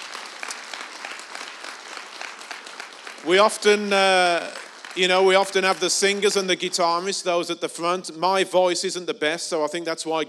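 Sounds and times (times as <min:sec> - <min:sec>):
crowd applauding: 0:00.0 - 0:07.1
speech: 0:03.2 - 0:10.2.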